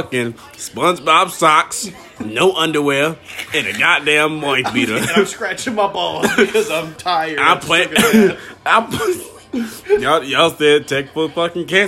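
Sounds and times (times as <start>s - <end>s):
speech: 0.0s - 11.8s
laughter: 3.2s - 7.0s, 7.8s - 10.0s
person coughing: 7.9s - 9.4s.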